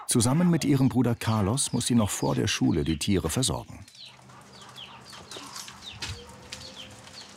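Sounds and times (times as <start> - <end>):
chickens clucking in a stall on a small farm: 0.0 - 7.3
speech: 0.1 - 4.0
scuffing: 4.5 - 7.3.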